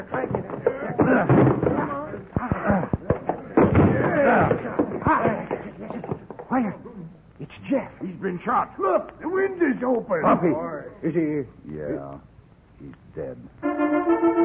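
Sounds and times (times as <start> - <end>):
locked door being forced open: 0.3 - 6.5
speech: 7.6 - 14.4.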